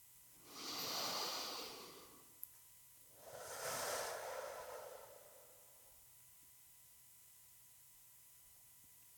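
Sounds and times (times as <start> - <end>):
person breathing in and out slowly and deliberately: 0.4 - 2.3, 3.2 - 6.0.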